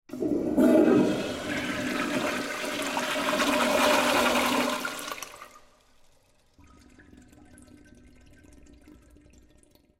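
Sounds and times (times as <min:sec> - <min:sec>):
toilet flushing in public restroom: 0:00.1 - 0:09.9.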